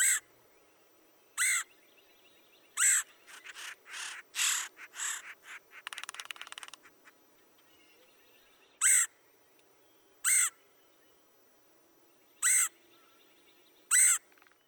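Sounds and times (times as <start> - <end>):
red-headed woodpecker giving harsh raspy calls: 0.0 - 0.3, 1.4 - 1.8, 2.7 - 8.1, 8.8 - 9.2, 10.2 - 10.6, 12.4 - 13.2, 13.9 - 14.6.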